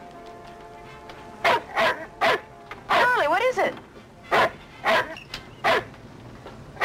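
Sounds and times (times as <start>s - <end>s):
dog barking in short sharp bursts: 1.4s - 3.2s, 4.3s - 5.9s.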